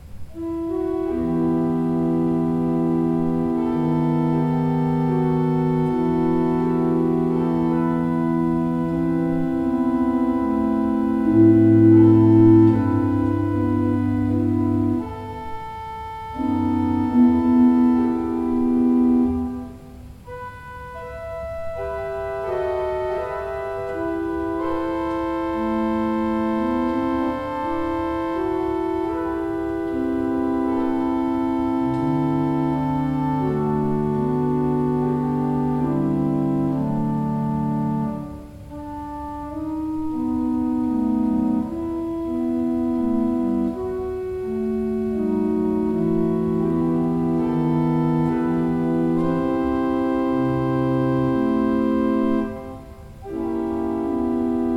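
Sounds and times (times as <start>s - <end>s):
pipe organ: 0.0s - 54.7s.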